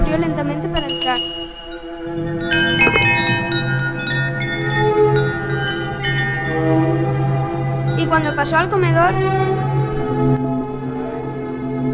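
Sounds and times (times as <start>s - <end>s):
steady low drone: 0.0s - 11.9s
speech: 0.1s - 3.0s, 8.1s - 9.5s
two-tone doorbell chime: 0.7s - 9.2s.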